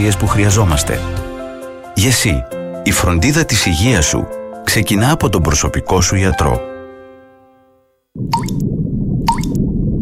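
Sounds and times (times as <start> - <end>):
speech: 0.0 - 1.3, 2.0 - 6.7
low watery rumble: 8.2 - 10.0
water drips from a leak plopping into a pool: 8.3 - 9.6.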